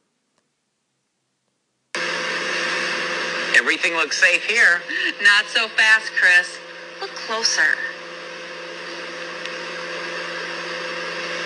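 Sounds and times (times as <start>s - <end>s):
microwave oven running with electrical hum and mechanical whir: 1.9s - 11.4s
speech: 3.6s - 7.9s.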